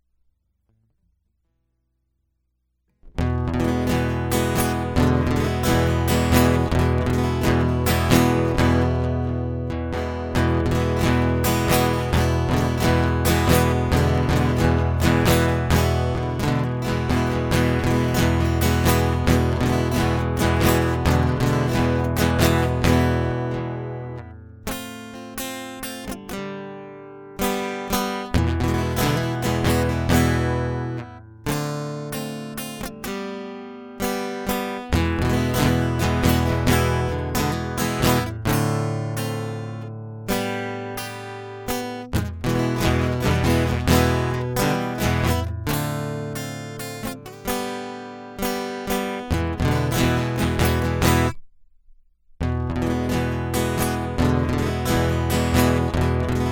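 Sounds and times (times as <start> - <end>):
guitar loop: 3.1 - 51.4, 52.4 - 56.4.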